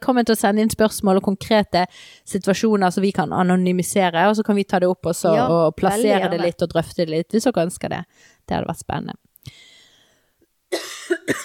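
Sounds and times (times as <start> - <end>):
speech: 0.1 - 9.6, 10.7 - 11.4
person coughing with harsh raspy coughs: 10.7 - 11.4.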